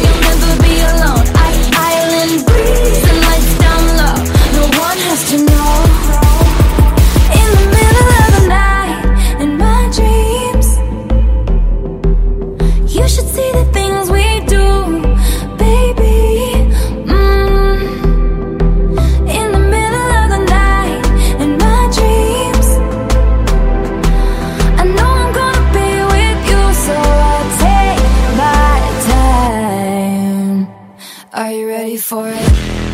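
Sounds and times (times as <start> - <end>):
female singer's pop song: 0.0 - 32.8.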